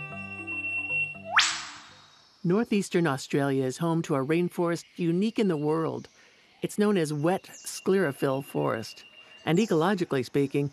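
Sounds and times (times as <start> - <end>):
eastern whipbird whip-crack call: 1.3 - 2.0
speech: 2.4 - 10.7.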